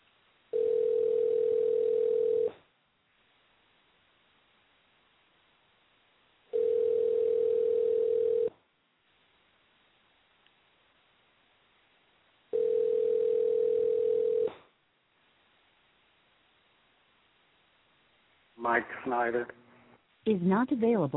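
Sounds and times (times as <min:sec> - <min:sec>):
telephone tone through a phone line while a call is placed: 0:00.5 - 0:02.6, 0:06.5 - 0:08.5, 0:12.5 - 0:14.5
speech: 0:18.7 - 0:19.6, 0:20.2 - 0:21.1.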